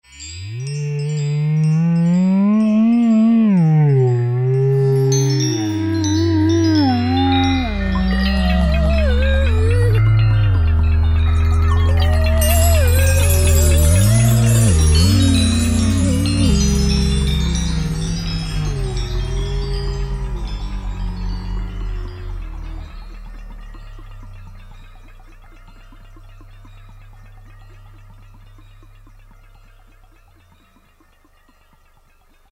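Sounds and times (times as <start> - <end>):
synthesizer bells from Roland M-DC1: 0.0 - 32.5.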